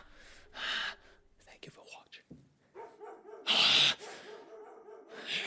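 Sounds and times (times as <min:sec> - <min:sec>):
dog barking: 0:02.7 - 0:05.3.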